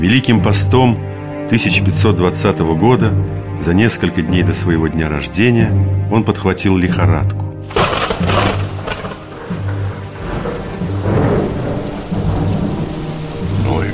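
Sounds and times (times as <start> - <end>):
speech: 0.0 - 8.6
deep rumbles of thunder: 7.6 - 13.9
heavy rain in a thunderstorm: 7.6 - 13.9.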